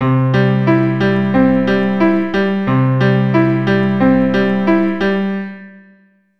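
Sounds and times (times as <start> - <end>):
keyboard arpeggio pattern in C: 0.0 - 5.6.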